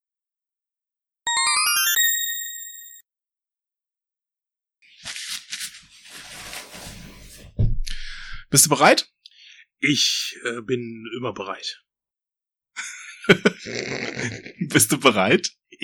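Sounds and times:
bright ringtone-style jingle of quick rising electronic notes: 1.3 - 3.0
rustling and clattering noise: 5.1 - 7.7
speech: 8.5 - 9.1, 9.8 - 11.8, 13.3 - 15.8
laughter: 12.8 - 15.0.

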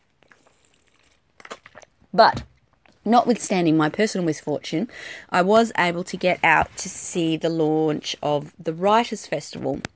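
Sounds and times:
sipping from a water bottle: 0.0 - 2.0
soft clicks and mouth sounds: 0.0 - 2.0, 2.6 - 3.0
wet slurp and swallow: 0.0 - 2.0
speech: 2.1 - 2.5, 3.1 - 9.9.

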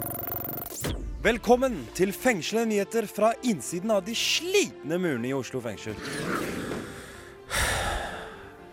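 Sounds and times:
speech: 0.8 - 6.5
heavy deliberate breathing: 6.6 - 8.6.

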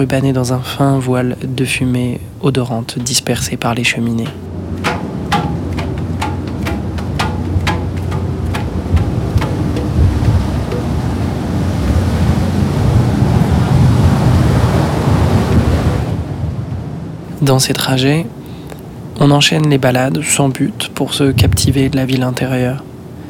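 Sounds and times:
speech: 0.0 - 5.1, 17.4 - 18.4, 19.2 - 22.9
wind gusts buffeting the microphone on a ferry deck: 0.0 - 17.3, 21.1 - 22.2
churning waves: 0.0 - 19.2, 19.9 - 23.2
sharp knocking clanks: 4.2 - 11.3.

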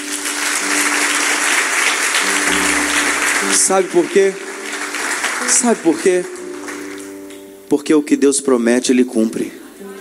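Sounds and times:
audience applauding loudly: 0.0 - 7.4
speech: 3.7 - 4.5, 5.4 - 6.4, 7.7 - 9.9.

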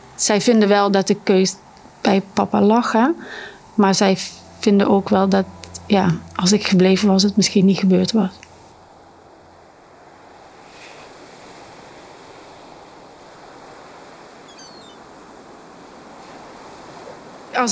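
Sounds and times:
speech: 0.2 - 8.5
sea surf rolling onto the shore: 10.2 - 17.7.

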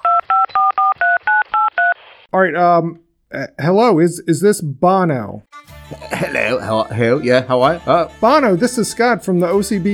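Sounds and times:
telephone keypad dialing tones: 0.0 - 2.0
speech: 2.3 - 9.9.

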